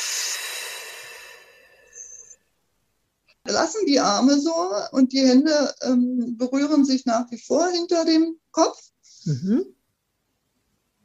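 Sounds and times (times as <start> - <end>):
deep breathing in and out during an arm stretch: 0.0 - 2.4
faint thin whistle: 0.0 - 2.4
speech: 3.5 - 9.8.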